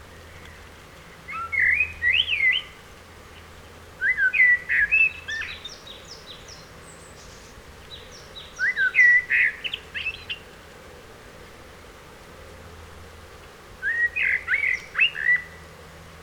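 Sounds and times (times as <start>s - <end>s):
Common blackbird Turdus merula singing warbling phrases: 1.3s - 2.8s, 4.0s - 10.4s, 13.8s - 15.6s.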